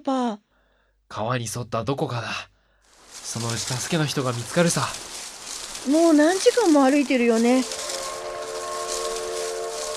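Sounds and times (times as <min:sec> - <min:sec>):
speech: 0:00.0 - 0:00.4, 0:01.1 - 0:02.5, 0:03.2 - 0:05.2, 0:05.8 - 0:07.9
rushing hiss: 0:02.8 - 0:09.9
train whistle from a railway near a river: 0:07.6 - 0:09.9.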